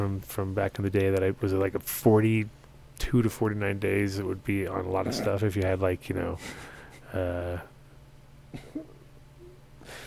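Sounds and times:
speech: 0.0 - 7.7, 8.5 - 8.9
quiet short cough: 5.0 - 5.4, 8.5 - 9.0.

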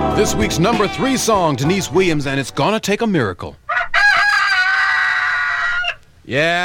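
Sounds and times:
speech: 0.2 - 3.6, 6.3 - 6.6
rooster crowing: 3.7 - 6.0.

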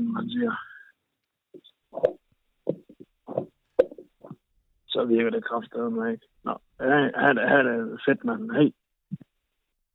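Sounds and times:
speech: 0.2 - 0.7, 5.0 - 8.8
plunger working in a clogged toilet heard over a phone call: 2.0 - 4.4.

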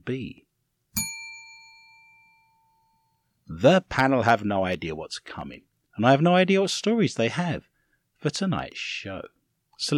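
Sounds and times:
speech: 0.0 - 0.4, 3.5 - 9.9
bell ding: 1.0 - 3.2.

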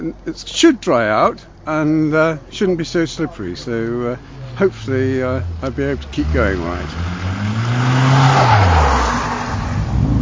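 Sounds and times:
speech: 0.0 - 8.8
steady rumble of racing traffic: 0.0 - 10.2
car engines roaring past on a motor racing circuit: 3.6 - 10.2.

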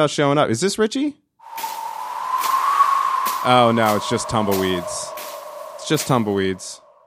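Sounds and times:
speech: 0.0 - 1.2, 3.4 - 5.0, 5.9 - 6.8
person imitating wind with their voice: 1.5 - 6.8.

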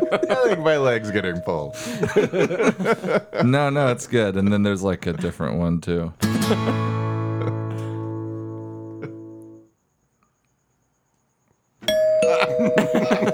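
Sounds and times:
resonant acoustic doorbell chime: 0.0 - 3.4, 11.8 - 13.3
laughter: 0.0 - 4.0, 6.2 - 8.1, 8.9 - 9.4, 12.2 - 13.3
speech: 0.1 - 6.9.

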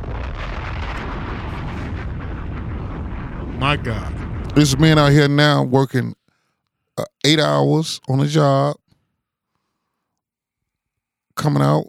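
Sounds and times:
bomb explosion sound effect: 0.0 - 5.8
speech: 3.6 - 6.2, 7.0 - 8.8, 11.4 - 11.8.

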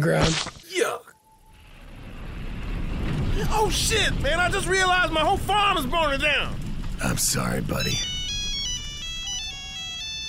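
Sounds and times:
speech: 0.0 - 1.0, 3.4 - 8.1
low rumble: 1.3 - 10.2
flip phone ringtone chiming electronic melody: 8.0 - 10.2.

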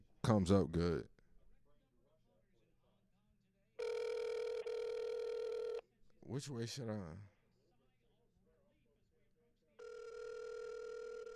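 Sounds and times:
speech: 0.3 - 1.1, 6.3 - 7.3
phone ringing tone through a speakerphone: 3.8 - 5.8, 9.8 - 11.3.

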